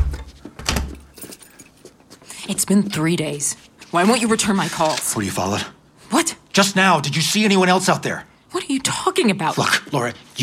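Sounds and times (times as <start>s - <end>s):
door swinging shut with a solid thud: 0.0s - 1.0s
speech: 2.4s - 10.4s.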